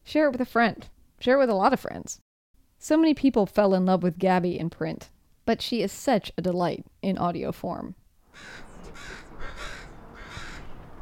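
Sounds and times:
speech: 0.1 - 2.2, 2.8 - 9.2
outdoor hum: 8.2 - 11.0
crows cawing: 8.3 - 10.9.

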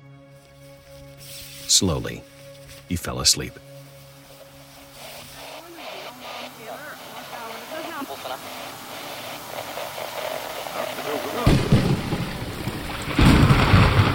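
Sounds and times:
speech: 1.7 - 2.3, 2.9 - 3.7
deep rumbles of thunder in a thunderstorm: 10.9 - 14.1.

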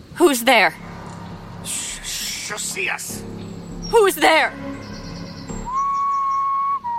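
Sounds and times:
speech: 0.2 - 0.9, 1.6 - 4.8
whistle: 4.8 - 6.9.

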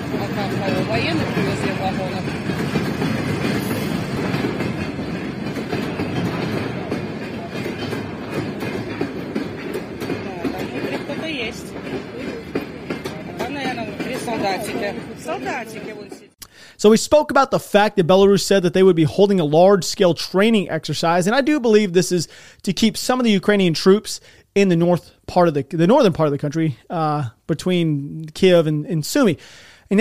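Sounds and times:
train wheels clacking over rail joints: 0.0 - 16.4
freight train carrying troop transport vehicles passing: 0.0 - 17.0
speech: 0.1 - 2.8, 14.6 - 16.1, 16.8 - 29.9.

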